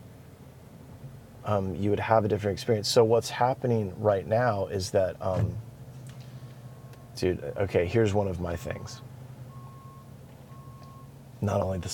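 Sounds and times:
truck diesel engine idling: 0.0s - 11.9s
speech: 1.5s - 5.7s, 7.2s - 9.1s, 11.4s - 11.9s
truck reversing alarm beeps during a three-point turn: 6.2s - 11.9s.

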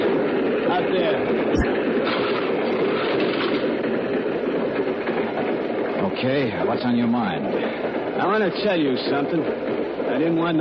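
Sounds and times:
train carriage rumbling on rails: 0.0s - 10.5s
speech: 6.2s - 10.5s.

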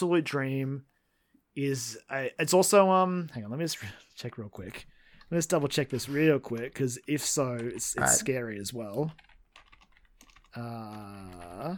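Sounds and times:
speech: 0.0s - 0.9s, 1.6s - 9.3s, 10.6s - 11.7s
computer keyboard clicks: 5.2s - 11.7s.

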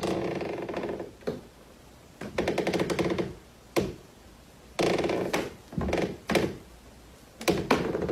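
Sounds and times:
wooden floorboard creaking Foley effect: 0.0s - 1.4s, 2.2s - 4.0s, 4.8s - 6.6s, 7.4s - 8.1s.

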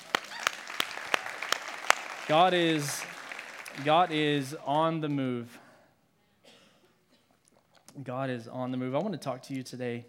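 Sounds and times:
sharp hand claps: 0.0s - 4.0s
speech: 2.3s - 3.1s, 3.8s - 5.6s, 8.0s - 10.0s.

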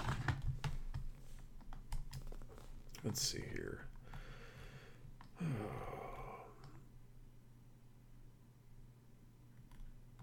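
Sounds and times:
typing on a computer keyboard: 0.0s - 2.4s, 9.7s - 10.2s
low hum: 0.0s - 10.2s
speech: 3.0s - 4.0s, 5.4s - 5.9s.

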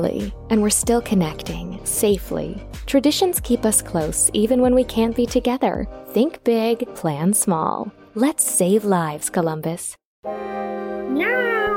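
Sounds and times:
speech: 0.0s - 10.4s, 11.1s - 11.7s
cat meowing: 11.1s - 11.7s.

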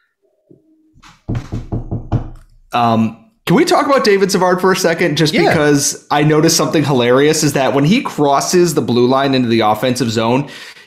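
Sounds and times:
knuckles rapping on wood: 1.2s - 2.4s
speech: 2.7s - 10.7s.

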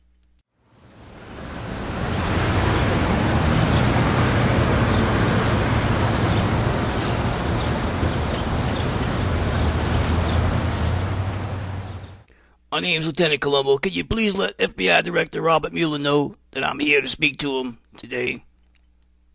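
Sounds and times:
street traffic roar in Washington D.C.: 0.7s - 12.3s
speech: 12.8s - 18.5s.

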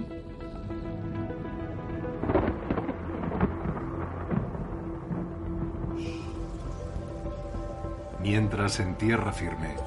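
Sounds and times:
rain falling: 0.0s - 9.8s
thunder rolling: 2.0s - 7.0s
speech: 8.3s - 9.8s.

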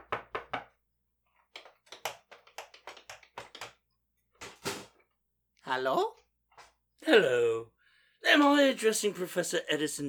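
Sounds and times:
sharp knocks on a laboratory door: 0.0s - 0.8s
speech: 5.7s - 6.2s, 7.0s - 7.7s, 8.3s - 10.0s.

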